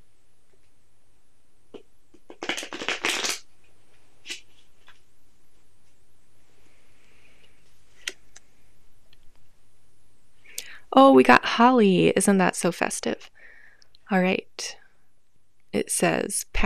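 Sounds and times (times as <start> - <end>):
flower essence oracle card deck riffling: 2.2 - 3.4
speech: 11.0 - 13.3, 14.1 - 14.8, 15.8 - 16.6.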